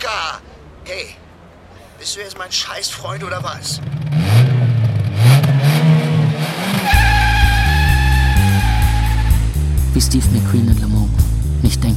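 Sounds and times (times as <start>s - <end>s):
speech: 2.0s - 4.0s, 10.0s - 11.9s
car engine revving: 3.0s - 11.9s.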